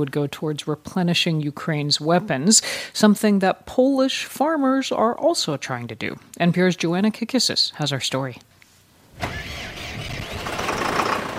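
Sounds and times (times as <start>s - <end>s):
speech: 0.0s - 8.5s
farm tractor engine starting and running on a wheat, corn and beet farm in Poland: 9.1s - 11.3s.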